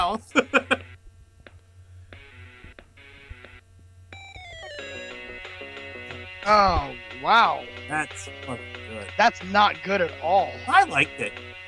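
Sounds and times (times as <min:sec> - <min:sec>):
low steady hum: 0:00.0 - 0:11.5
speech: 0:00.1 - 0:00.5, 0:06.5 - 0:11.5
phone ringtone playing a bright electronic melody: 0:04.1 - 0:09.5.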